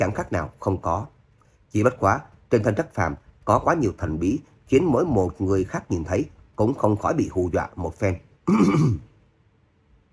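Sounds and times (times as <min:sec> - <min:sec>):
speech: 0:00.0 - 0:09.1
light cough or throat clearing: 0:08.4 - 0:09.2.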